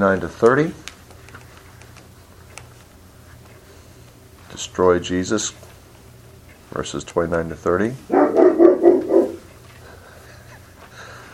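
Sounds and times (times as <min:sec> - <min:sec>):
speech: 0:00.0 - 0:00.8, 0:04.6 - 0:05.7, 0:06.7 - 0:08.4
low steady hum: 0:00.0 - 0:11.3
pet dog barking while guarding a gathering: 0:08.1 - 0:09.5.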